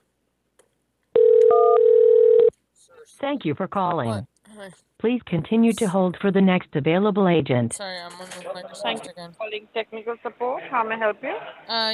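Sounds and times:
steady loud telephone dial-style tone: 0:01.2 - 0:02.5
speech: 0:03.2 - 0:11.9.

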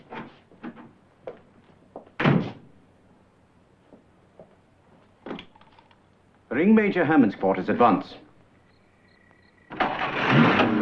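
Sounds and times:
faint steady tone: 0:04.7 - 0:09.8
speech: 0:06.6 - 0:08.2
car engine starting and roaring: 0:09.7 - 0:10.8.

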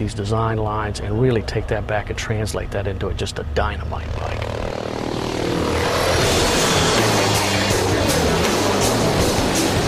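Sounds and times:
speech: 0:00.0 - 0:04.5
military helicopter engine roar with rotor pulse: 0:03.8 - 0:09.8.

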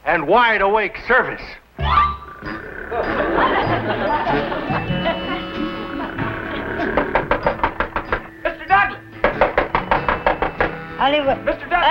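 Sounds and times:
speech: 0:00.1 - 0:05.2, 0:11.0 - 0:11.8
laughter: 0:02.7 - 0:07.8
sharp knocks on a door: 0:06.3 - 0:08.4, 0:09.2 - 0:10.9.

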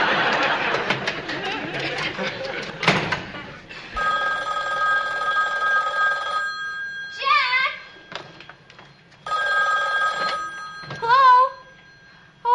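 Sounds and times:
noisy crowd chatter and laughter: 0:00.0 - 0:04.0
telephone ringing in long electronic bursts: 0:04.0 - 0:12.4.

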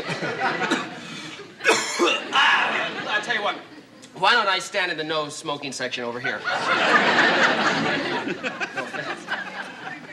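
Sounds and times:
laughter: 0:00.0 - 0:03.7, 0:06.2 - 0:10.1
person coughing: 0:01.6 - 0:02.4
speech: 0:03.4 - 0:08.6.

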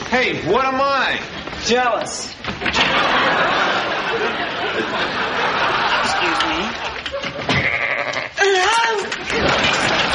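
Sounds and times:
speech: 0:00.1 - 0:07.8
laughter: 0:02.6 - 0:07.8, 0:08.6 - 0:10.1
sheep bleating: 0:07.5 - 0:08.4.

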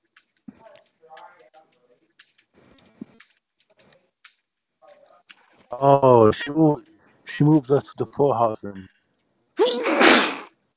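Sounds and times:
speech: 0:05.7 - 0:08.9
loud sneeze with a sharp voiced intake: 0:09.6 - 0:10.5.

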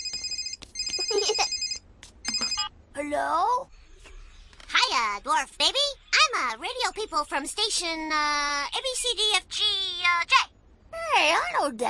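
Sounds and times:
telephone ringing with a buzzy electronic trill: 0:00.0 - 0:02.7
speech: 0:01.2 - 0:01.5, 0:03.1 - 0:03.7, 0:05.0 - 0:10.4, 0:11.1 - 0:11.8.

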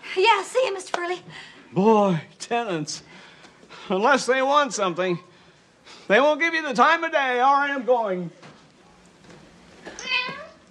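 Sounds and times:
speech: 0:00.2 - 0:03.2, 0:03.9 - 0:05.3, 0:06.1 - 0:08.4
cat meowing: 0:10.0 - 0:10.6.

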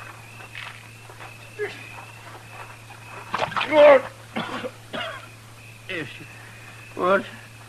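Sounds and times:
steady low hum: 0:00.0 - 0:07.6
man sputtering and coughing: 0:04.3 - 0:05.3.

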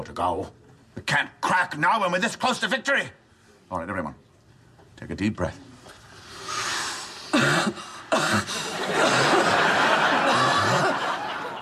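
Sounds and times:
speech: 0:00.0 - 0:04.2, 0:05.0 - 0:05.7
person coughing: 0:07.3 - 0:09.5, 0:10.2 - 0:11.0
laughter: 0:08.5 - 0:11.5.

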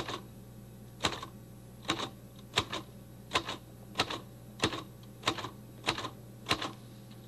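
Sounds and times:
faint low hum: 0:00.0 - 0:07.2
manual typewriter key strikes: 0:01.9 - 0:06.8.

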